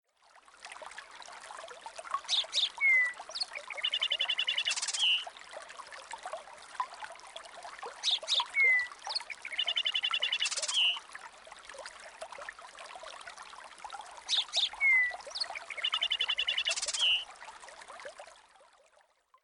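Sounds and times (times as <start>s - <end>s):
birds chirping: 2.3s - 5.3s, 8.0s - 11.0s, 14.3s - 17.2s.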